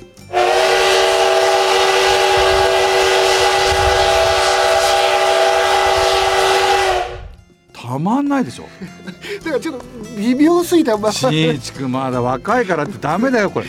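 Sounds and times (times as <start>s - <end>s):
loud steam locomotive whistle at Yokokawa station: 0.3s - 7.4s
speech: 8.0s - 13.6s
laughter: 8.7s - 10.1s.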